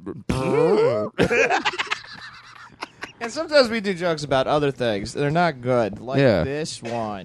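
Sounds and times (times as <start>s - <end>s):
long buzzy vocal fart imitation: 0.0s - 1.4s
speech: 0.1s - 2.0s, 3.2s - 7.2s
person laughing: 0.5s - 3.3s.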